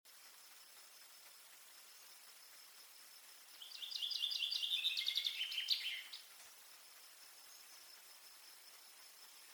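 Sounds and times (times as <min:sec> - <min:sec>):
Common chaffinch singing cascading song phrase: 0:03.5 - 0:06.4.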